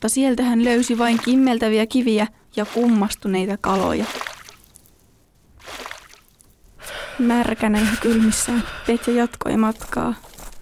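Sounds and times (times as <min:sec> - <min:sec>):
speech: 0:00.0 - 0:04.3, 0:07.2 - 0:10.3
water sloshing and splashing: 0:00.6 - 0:06.8.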